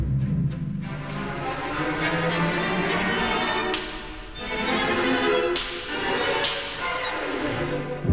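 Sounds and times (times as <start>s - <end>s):
sustained orchestral music: 0.0s - 8.1s
orchestral slapstick whip cracking: 3.4s - 7.4s.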